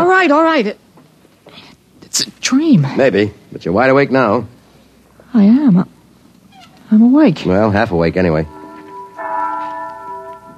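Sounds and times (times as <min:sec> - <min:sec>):
speech: 0:00.2 - 0:00.8, 0:01.5 - 0:04.6, 0:05.3 - 0:06.0, 0:06.9 - 0:08.6
church bell ringing: 0:08.2 - 0:10.5.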